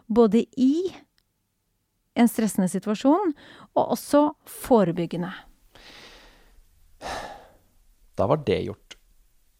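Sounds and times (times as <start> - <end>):
speech: 0.1 - 1.0, 2.2 - 5.5, 8.2 - 8.9
slow calm deep breath in and out: 5.7 - 7.8.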